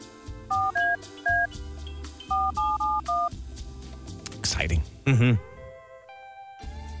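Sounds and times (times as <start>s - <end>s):
soft music: 0.0s - 6.9s
touch-tone keypad beeps dialing a phone number: 0.5s - 1.5s, 2.3s - 3.3s
speech: 4.6s - 5.5s.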